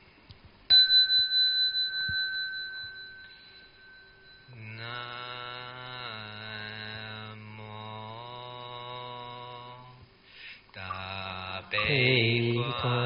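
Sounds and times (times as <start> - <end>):
meditation bell ringing: 0.7 - 7.0, 10.9 - 13.0
person chanting: 4.5 - 10.0, 10.8 - 13.0
speech: 11.8 - 13.0.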